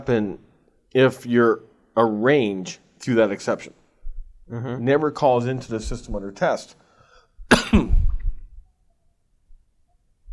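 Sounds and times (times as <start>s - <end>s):
speech: 0.0s - 3.8s, 4.5s - 6.8s
single harsh cough with rasping tail: 7.5s - 8.3s.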